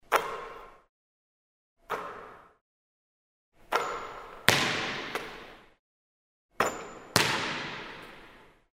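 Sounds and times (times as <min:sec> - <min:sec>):
basketball bouncing: 0:03.8 - 0:05.6, 0:06.6 - 0:08.4.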